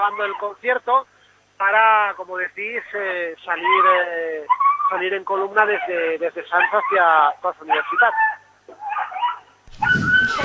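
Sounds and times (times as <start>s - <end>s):
small dog whimpering in the rain: 0.0s - 0.5s, 3.6s - 10.4s
speech: 0.0s - 8.3s.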